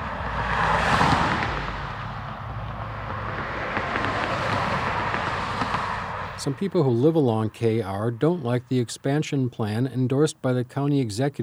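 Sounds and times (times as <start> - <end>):
vehicle rushing past on a two-lane country road: 0.0 - 8.8
traffic road noise on a two-lane country road: 0.0 - 11.4
speech: 6.4 - 11.4.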